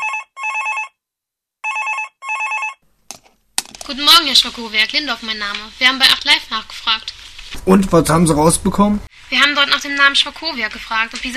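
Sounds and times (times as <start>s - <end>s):
telephone ringing with a trilling double-burst tone: 0.0s - 1.0s, 1.6s - 2.8s
speech: 3.9s - 11.3s.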